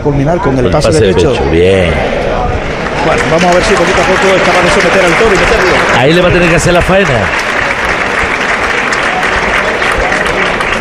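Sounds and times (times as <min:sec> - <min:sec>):
faint crowd murmur: 0:00.0 - 0:06.2, 0:07.2 - 0:10.7
speech: 0:00.0 - 0:07.5
large outdoor bullring crowd applauding: 0:02.7 - 0:10.7.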